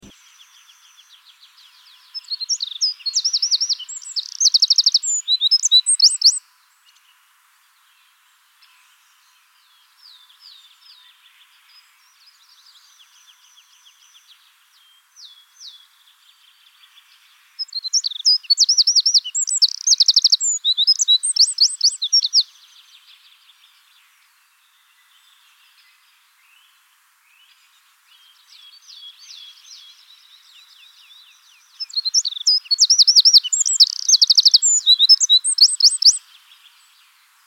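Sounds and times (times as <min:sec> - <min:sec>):
wren singing: 0:02.0 - 0:06.4, 0:17.6 - 0:22.4, 0:28.7 - 0:36.7.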